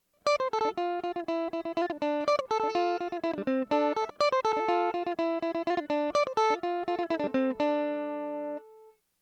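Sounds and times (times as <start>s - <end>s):
electric mandolin playing: 0.3s - 8.9s.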